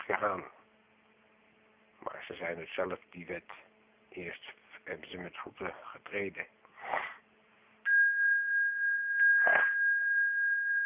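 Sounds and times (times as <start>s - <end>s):
speech: 0.1s - 0.6s, 2.2s - 7.1s
sniffling from a runny nose: 6.8s - 7.2s
steady high-pitched electronic tone: 7.9s - 10.8s.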